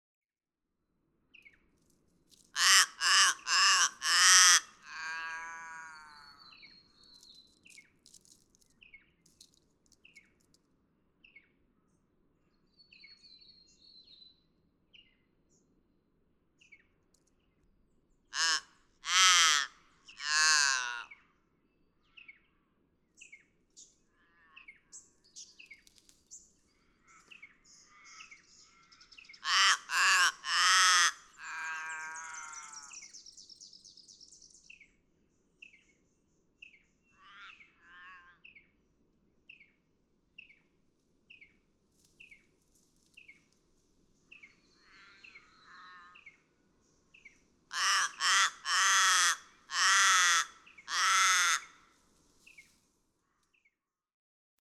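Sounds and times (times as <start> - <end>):
forest raven: 2.6 - 6.5, 18.3 - 21.2, 26.9 - 33.1, 37.1 - 38.5, 44.8 - 46.5, 47.7 - 51.9.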